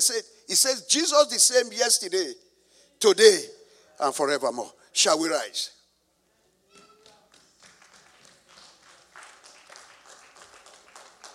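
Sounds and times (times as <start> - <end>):
speech: 0.0 - 5.8
large group of audience clapping hands: 6.8 - 11.3.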